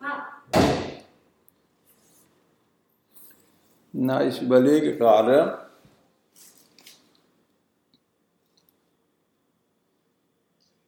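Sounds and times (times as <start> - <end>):
door slamming shut: 0.5 - 1.0
speech: 4.0 - 5.6.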